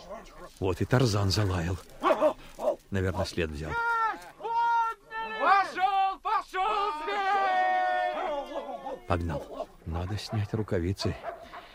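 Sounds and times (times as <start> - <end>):
speech: 0.1 - 2.3, 2.9 - 4.0, 9.1 - 11.6
hunt beaters shouting and hollering: 1.9 - 2.9, 3.6 - 9.9.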